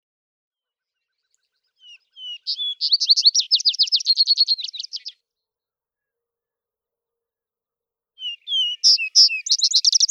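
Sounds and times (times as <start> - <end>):
vesper sparrow song: 0.6 - 6.6, 8.2 - 10.0
speech: 2.9 - 3.5.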